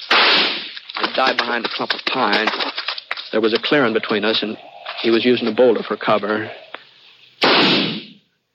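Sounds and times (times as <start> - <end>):
gunshot fired in the snow across a clearing: 0.0 - 0.8, 7.4 - 8.2
speech: 1.2 - 6.6.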